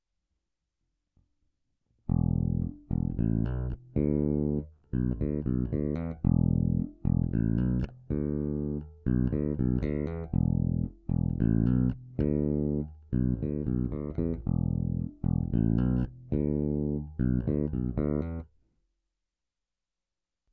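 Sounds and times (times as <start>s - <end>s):
thumb plucking strings through middle bridge and neck pickups: 2.1s - 18.4s.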